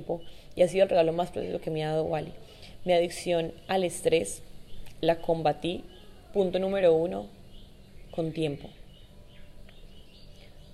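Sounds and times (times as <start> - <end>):
speech: 0.0 - 7.4, 8.2 - 8.8
small bird chirping and trilling: 4.6 - 6.7, 7.4 - 10.7.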